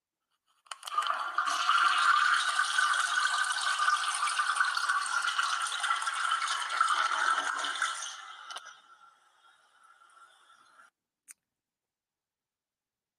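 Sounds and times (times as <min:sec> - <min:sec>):
toilet flushing: 0:00.8 - 0:10.9.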